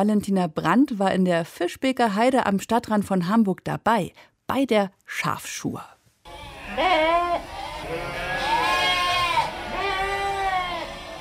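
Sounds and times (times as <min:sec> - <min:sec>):
speech: 0:00.0 - 0:06.0, 0:06.8 - 0:08.2
flock of sheep and lambs bleating excitedly: 0:06.3 - 0:11.1.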